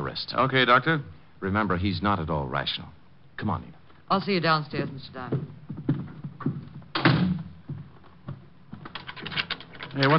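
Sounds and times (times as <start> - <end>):
speech: 0.2 - 5.6, 10.0 - 10.1
door thudding shut: 6.9 - 7.5
small metallic clicks and rattles of door lock: 8.8 - 10.1.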